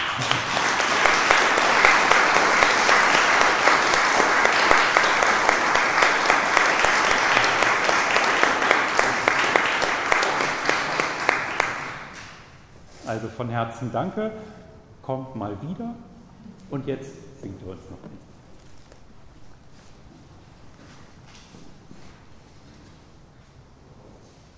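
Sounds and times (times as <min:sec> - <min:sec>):
audience applauding: 0:00.0 - 0:12.6
speech: 0:13.2 - 0:18.3.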